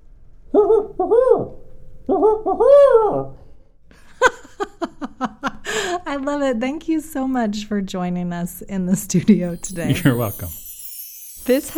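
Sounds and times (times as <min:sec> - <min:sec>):
human voice imitating a barred owl's hooting call: 0:00.5 - 0:03.4
speech: 0:02.2 - 0:03.4, 0:06.2 - 0:10.6, 0:11.4 - 0:11.7.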